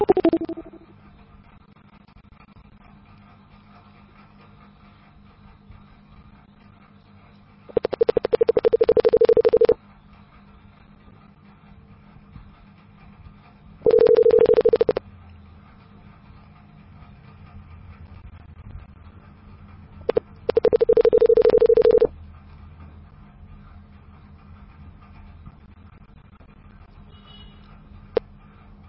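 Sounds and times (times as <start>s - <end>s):
telephone dial tone after a call is hung up: 0.0s - 0.8s, 7.7s - 9.8s, 13.8s - 15.0s, 20.1s - 22.1s
low hum: 0.0s - 28.8s.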